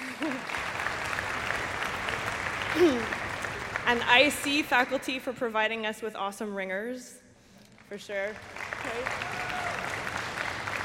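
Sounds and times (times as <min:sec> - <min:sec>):
audience applause: 0:00.0 - 0:04.6, 0:08.3 - 0:10.8
speech: 0:02.8 - 0:03.2, 0:03.9 - 0:07.2, 0:07.9 - 0:09.5.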